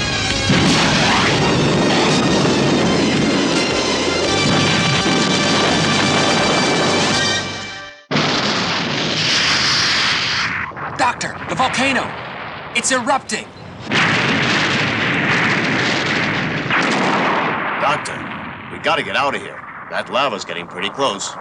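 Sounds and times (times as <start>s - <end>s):
laser missile firing in a space battle as an explosive roar: 0.0s - 21.3s
speech: 12.8s - 13.6s, 18.8s - 21.3s.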